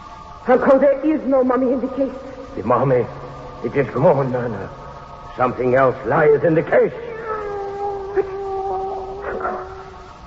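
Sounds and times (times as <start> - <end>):
speech: 0.4 - 4.8, 5.4 - 7.1
cat yowling in a long wavering wail: 6.8 - 10.2.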